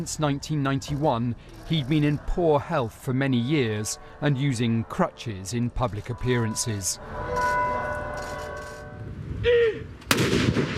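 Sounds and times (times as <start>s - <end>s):
speech: 0.0s - 7.6s
ringing tone: 3.3s - 9.2s
ceremonial cannon firing a tribute salute in Oslo: 10.1s - 10.7s.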